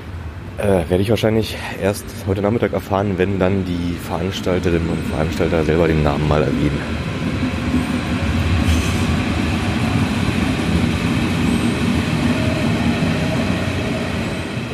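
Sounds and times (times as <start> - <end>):
S-Bahn commuter train rumbling at a platform: 0.0 - 14.7
speech: 0.6 - 7.5
brief hiss: 8.6 - 9.1.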